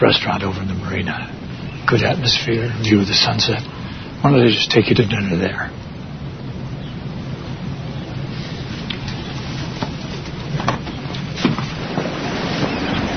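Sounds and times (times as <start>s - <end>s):
speech: 0.0s - 5.8s
breeze on a moored boat: 0.0s - 13.1s
water washing against a moored boat: 0.0s - 13.1s
soft knocks and creaks aboard a moored boat: 8.8s - 13.1s.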